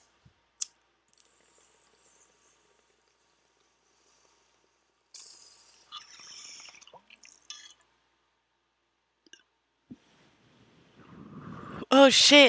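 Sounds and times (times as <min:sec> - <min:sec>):
water bubbling in a bong being hit: 0:05.2 - 0:07.8
speech: 0:12.0 - 0:12.4.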